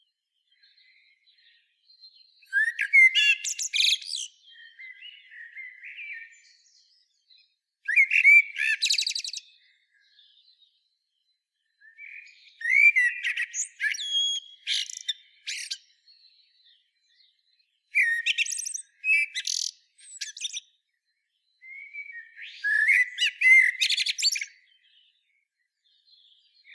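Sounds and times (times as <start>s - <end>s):
common blackbird Turdus merula singing: 0.0s - 26.7s.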